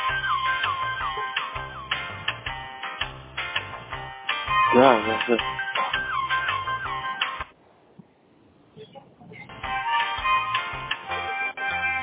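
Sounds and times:
phone ringtone electronic melody: 0:00.0 - 0:02.2, 0:04.5 - 0:07.4, 0:09.6 - 0:12.0
speech: 0:04.7 - 0:05.6.

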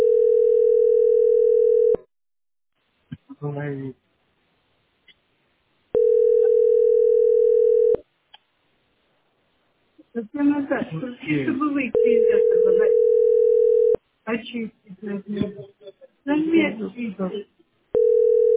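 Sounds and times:
loud electronic phone ring tone of an incoming call: 0:00.0 - 0:02.0, 0:06.0 - 0:08.0, 0:11.9 - 0:14.0, 0:18.0 - 0:18.5
speech: 0:03.4 - 0:04.0, 0:10.2 - 0:13.1, 0:14.3 - 0:17.5.

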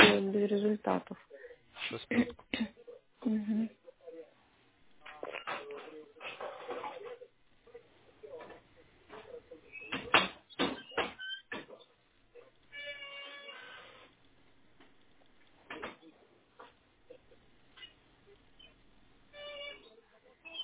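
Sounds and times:
voices: 0:00.0 - 0:12.7, 0:15.5 - 0:18.8, 0:19.7 - 0:20.6
speech: 0:00.4 - 0:03.8
door creaking open: 0:09.7 - 0:11.8, 0:12.7 - 0:14.1.

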